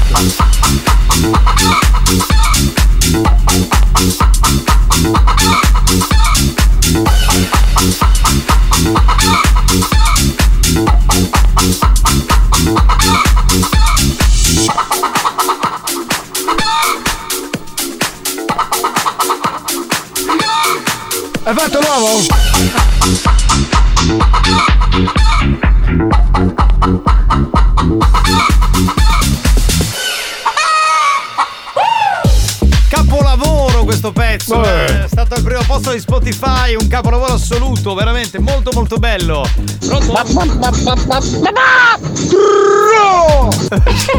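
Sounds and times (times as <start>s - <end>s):
loud upbeat novelty dance track with pounding steady beat and heavy bass: 0.0s - 30.0s, 32.2s - 42.2s, 42.8s - 44.1s
speech: 0.2s - 0.6s, 37.8s - 44.1s
rhythmic chicken clucks in a novelty dance track: 1.1s - 32.3s, 39.8s - 43.0s
laughter: 1.1s - 32.4s, 33.0s - 44.1s.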